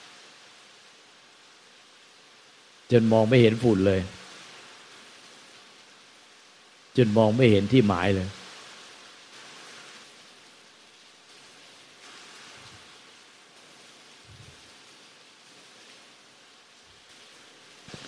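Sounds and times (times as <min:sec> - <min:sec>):
steady dense rain falling: 0:00.0 - 0:18.0
speech: 0:02.9 - 0:04.2, 0:07.0 - 0:08.4.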